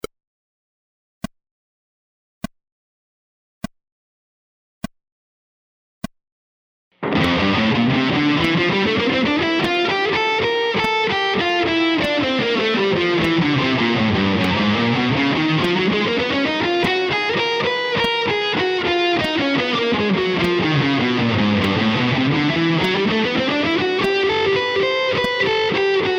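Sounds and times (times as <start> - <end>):
guitar playing slow scales with rhythmic variations: 7.0 - 26.1.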